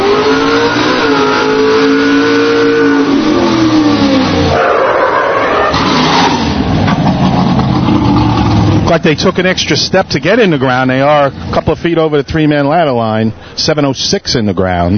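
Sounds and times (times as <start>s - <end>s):
big red fire truck engine revving during a firefighters' drill competition: 0.0s - 10.6s
speech: 8.9s - 14.9s.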